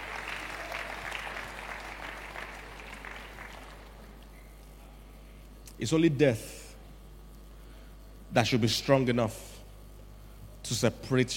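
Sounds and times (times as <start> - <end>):
congregation applauding: 0.0 - 4.4
speech: 5.8 - 6.6, 8.4 - 9.5, 10.7 - 11.3.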